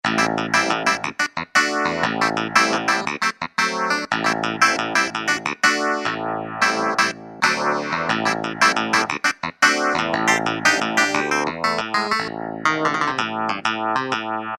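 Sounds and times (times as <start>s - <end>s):
phased clavinet sound on a Kurzweil K2000 keyboard: 0.0s - 14.5s.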